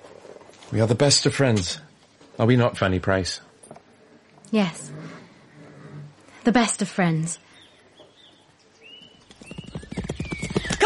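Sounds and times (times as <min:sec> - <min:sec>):
speech: 0:00.7 - 0:03.5, 0:04.5 - 0:04.9, 0:06.4 - 0:07.5
ridden horse's hooves clip-clopping: 0:08.9 - 0:10.8.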